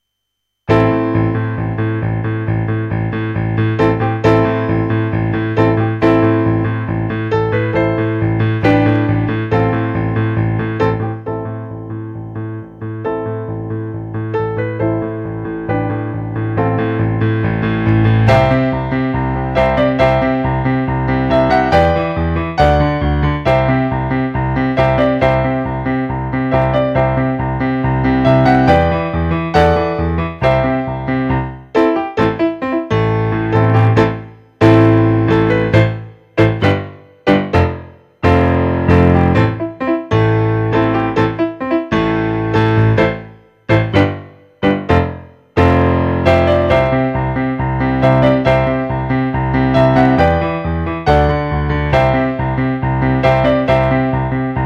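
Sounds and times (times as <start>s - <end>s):
accompaniment music: 0.7s - 54.6s.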